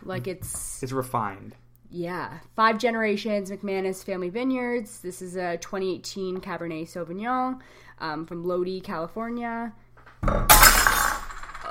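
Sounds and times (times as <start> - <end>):
speech: 0.1 - 10.7
wine glass shattering: 10.3 - 11.6.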